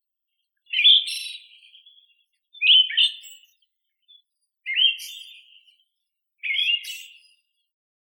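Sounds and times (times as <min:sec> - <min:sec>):
Siberian thrush Zoothera sibirica whistled song: 0:00.7 - 0:05.8, 0:06.4 - 0:07.4.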